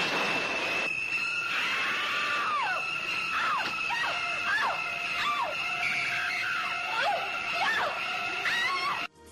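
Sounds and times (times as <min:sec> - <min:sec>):
sustained high whine: 0:00.0 - 0:09.1
shrill violins stabbing in horror film score: 0:00.7 - 0:09.1.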